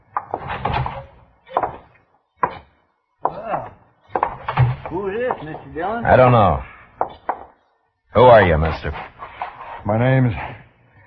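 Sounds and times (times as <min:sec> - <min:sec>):
door opening with wooden clunks and rattles: 0:00.1 - 0:02.7, 0:03.5 - 0:05.6
speech: 0:05.4 - 0:07.1, 0:08.2 - 0:09.1, 0:09.8 - 0:10.6.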